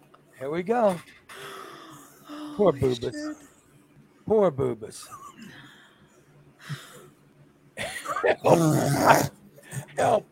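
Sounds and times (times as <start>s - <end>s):
speech: 0.4s - 1.2s, 2.6s - 3.5s, 4.3s - 5.7s, 8.2s - 9.4s, 10.0s - 10.3s
dog growling and whimpering: 8.2s - 9.3s.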